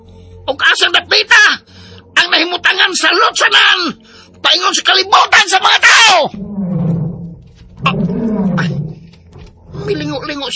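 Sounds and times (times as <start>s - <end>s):
speech: 0.5s - 1.7s, 2.3s - 6.5s, 9.9s - 10.5s
big tiger roaring and snarling: 6.3s - 10.3s.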